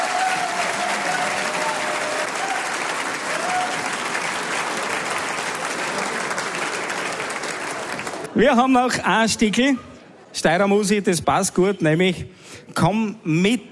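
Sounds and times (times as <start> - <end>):
audience applause: 0.0 - 8.4
speech: 8.4 - 13.6.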